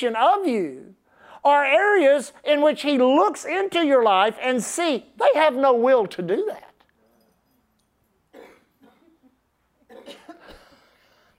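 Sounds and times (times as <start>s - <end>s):
speech: 0.0s - 6.7s
harsh hacking coughs: 8.3s - 11.1s.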